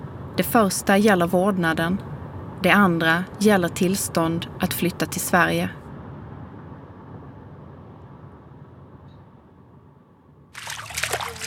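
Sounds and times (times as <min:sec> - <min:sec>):
speech: 0:00.4 - 0:05.8
water trickling: 0:10.6 - 0:11.4.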